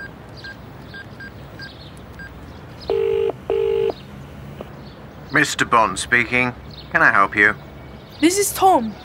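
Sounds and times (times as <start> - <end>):
telephone being dialed, DTMF tones: 2.9 - 4.0
speech: 5.4 - 9.0.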